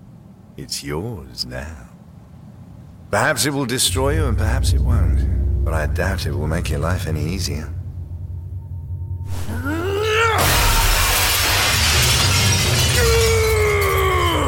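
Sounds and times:
speech: 0.6s - 1.9s, 3.1s - 7.8s
swooping groan-like tones: 4.0s - 11.0s
glass mirror shattering onto the floor: 10.4s - 14.3s.

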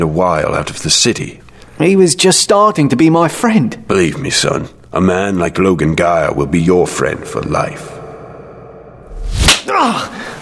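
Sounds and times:
speech: 0.0s - 8.0s, 9.7s - 10.3s
quick swish of a hand: 9.1s - 9.7s
hard slap across a boy's face: 9.4s - 9.9s.

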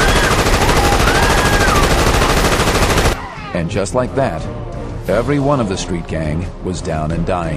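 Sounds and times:
rapid blaster gunfire at short range: 0.0s - 3.2s
speech: 3.7s - 7.5s.

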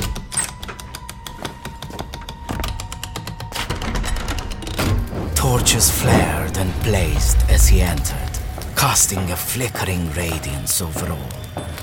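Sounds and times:
gold key rattling and clicking in the lock of a wooden door: 0.0s - 5.2s
heavy wooden door creaking open: 0.0s - 8.7s
speech: 5.5s - 11.8s.

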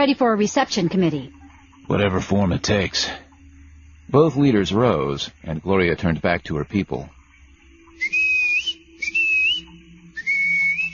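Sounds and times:
speech: 0.0s - 3.2s, 4.1s - 7.2s
faint low hum: 0.0s - 10.9s
woman whistling commands to her caravan group: 8.0s - 10.9s.

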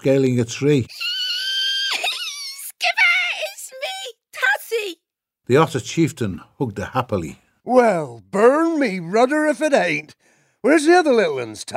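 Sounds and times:
speech: 0.0s - 1.1s, 5.5s - 11.7s
narrator imitating a delighted squeal: 0.9s - 2.8s.

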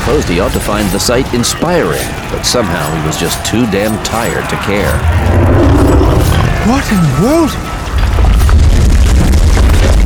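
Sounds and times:
speech: 0.1s - 8.4s
ice covering a moat exploding with booming roar: 5.0s - 10.0s.

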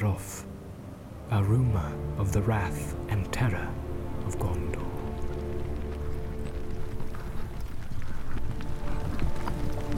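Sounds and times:
speech: 0.1s - 0.5s, 1.3s - 4.9s
horses' hooves clip-clopping as riders head back: 4.2s - 9.9s.

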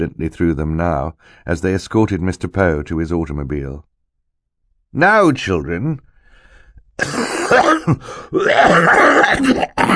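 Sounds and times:
speech: 0.0s - 3.9s, 4.9s - 6.1s, 7.0s - 9.9s
man coughing harshly into a handkerchief: 7.0s - 9.9s.

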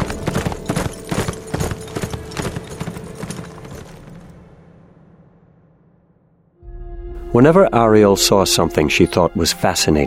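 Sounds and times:
horse hooves trotting with a rider: 0.0s - 4.4s
speech: 7.4s - 10.0s.

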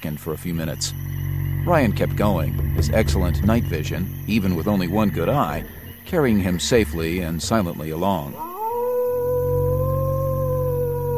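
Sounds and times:
speech: 0.0s - 8.5s
wolf howling at night: 8.2s - 11.1s.

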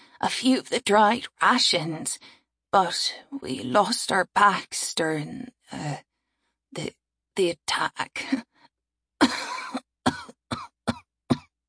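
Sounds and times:
speech: 0.2s - 6.1s, 6.7s - 8.5s
woman coughing: 9.2s - 11.5s.

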